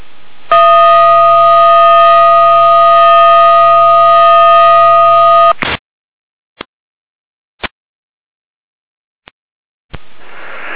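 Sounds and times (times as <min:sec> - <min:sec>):
fire brigade alarm tone over radio: 0:00.5 - 0:05.6.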